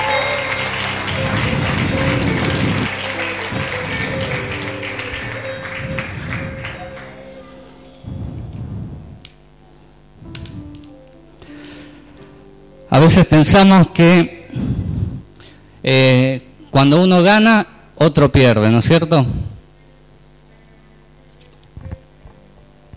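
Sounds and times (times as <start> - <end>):
congregation applause in a church after a sermon: 0.0 - 9.4
steady low tonal background: 0.0 - 16.7
speech: 13.0 - 14.4, 15.8 - 19.5.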